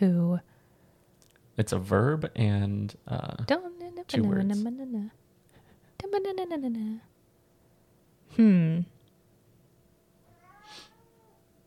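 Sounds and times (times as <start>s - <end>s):
speech: 0.0s - 0.5s, 1.6s - 5.2s, 6.0s - 7.1s, 8.3s - 9.0s
cat meowing: 10.2s - 11.4s.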